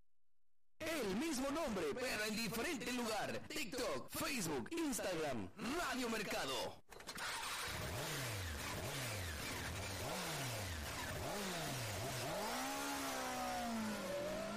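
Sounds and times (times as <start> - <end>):
speech: 1.0 - 6.9
motorcycle engine revving: 7.2 - 14.5.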